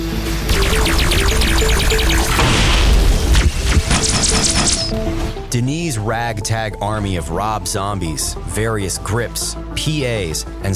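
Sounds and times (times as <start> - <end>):
bombs exploding beyond a perimeter: 0.5 - 5.4
crackling and rattling bursts: 0.5 - 5.6
speech: 4.1 - 10.7.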